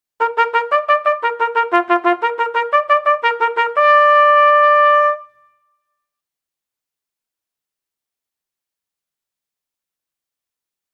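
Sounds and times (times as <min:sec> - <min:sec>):
bugle call: 0:00.2 - 0:05.5.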